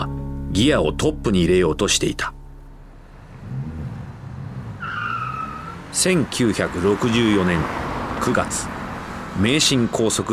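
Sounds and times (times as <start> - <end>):
speech: 0.0 - 2.4, 6.0 - 8.8, 9.4 - 10.3
car engine roaring: 0.0 - 10.3
high-pitched tire screech of a racing car: 3.2 - 9.5.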